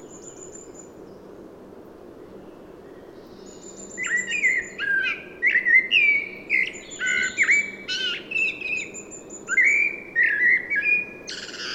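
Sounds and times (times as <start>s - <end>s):
common blackbird Turdus merula warbled whistled song: 3.8s - 11.7s.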